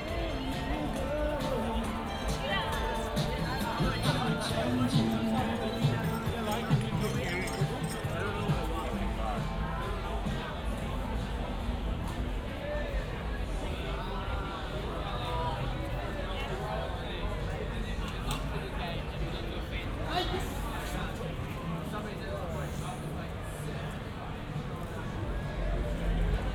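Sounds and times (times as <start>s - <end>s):
murmur of many overlapping voices in a waterside bar and restaurant: 0.0s - 26.5s
thuds and clinks of dishes or glasses: 5.4s - 8.6s.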